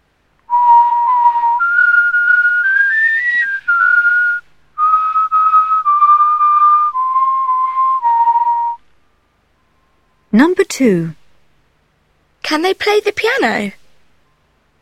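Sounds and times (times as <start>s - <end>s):
people whistling a melody: 0.5s - 8.8s
speech: 10.4s - 11.2s, 12.5s - 13.8s.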